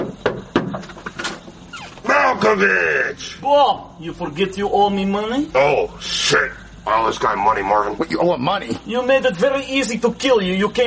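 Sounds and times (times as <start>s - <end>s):
knocking on a house door: 0.0s - 1.0s
speech: 2.4s - 10.8s.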